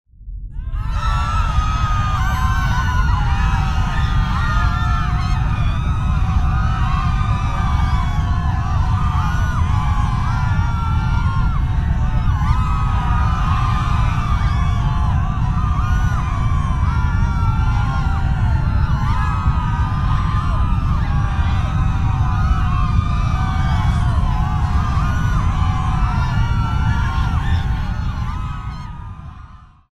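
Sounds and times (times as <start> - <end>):
rumble: 0.1 - 29.8
people shouting: 0.6 - 29.5.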